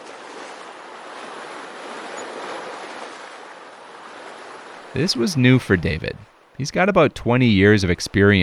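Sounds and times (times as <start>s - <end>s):
wind-driven choppy waves with whitecaps churning on a lake: 0.0s - 8.4s
wind blowing over a lake: 4.8s - 8.4s
speech: 4.9s - 8.4s.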